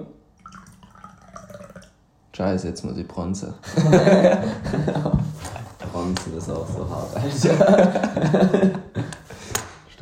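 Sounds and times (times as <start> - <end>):
rum splashing as it is poured into a glass: 0.3 - 2.1
speech: 2.4 - 8.9
laughter: 3.6 - 6.0, 7.2 - 9.3.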